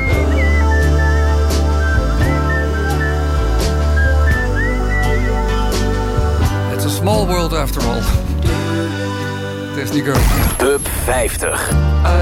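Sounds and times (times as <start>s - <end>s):
person whistling a clear steady melody: 0.0s - 6.0s
full music backing: 0.0s - 12.2s
speech: 7.5s - 8.2s, 9.8s - 12.2s.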